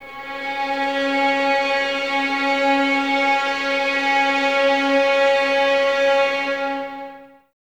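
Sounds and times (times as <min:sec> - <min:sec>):
string ensemble of 11 violins playing C sharp 4 sul ponte: 0:00.0 - 0:07.4.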